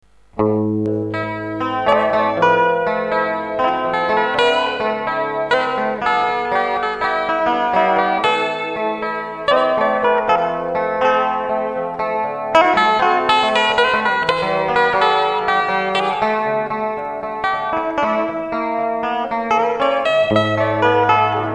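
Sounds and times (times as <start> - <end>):
clean electric guitar: 0.0 - 21.5.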